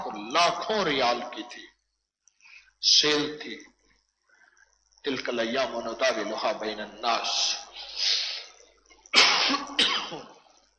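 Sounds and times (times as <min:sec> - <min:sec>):
speech: 0:00.3 - 0:01.7, 0:02.8 - 0:03.7, 0:05.0 - 0:08.2, 0:09.5 - 0:10.1
rough breath: 0:07.8 - 0:08.5
harsh raspy coughs inside an aeroplane: 0:09.1 - 0:10.4.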